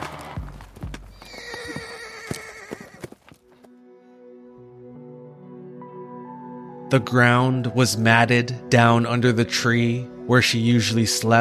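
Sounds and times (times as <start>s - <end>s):
horse galloping at full speed, hooves pounding: 0.0s - 3.6s
horse whinnying loud and high: 1.1s - 3.0s
speech: 6.9s - 11.3s.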